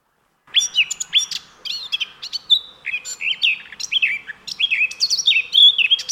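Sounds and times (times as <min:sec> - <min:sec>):
songbird singing a varied melodic song: 0:00.5 - 0:06.0.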